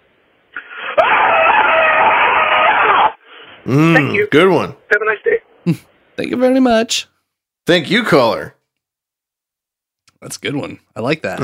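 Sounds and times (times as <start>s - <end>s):
person screaming on a voicemail recording: 0.8s - 3.2s
speech: 3.7s - 7.1s, 7.7s - 8.6s, 10.2s - 11.4s.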